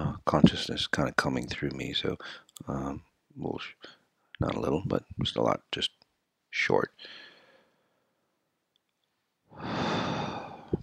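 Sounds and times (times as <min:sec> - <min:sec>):
speech: 0:00.3 - 0:07.3
strong deep breath in: 0:07.0 - 0:08.2, 0:09.5 - 0:10.8.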